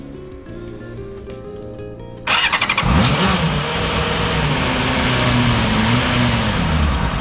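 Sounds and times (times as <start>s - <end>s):
car engine starter whir: 2.3s - 7.1s.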